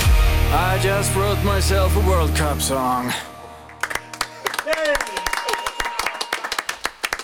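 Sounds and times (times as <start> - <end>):
speech: 0.8 - 3.3
small group hand clapping: 3.7 - 7.2.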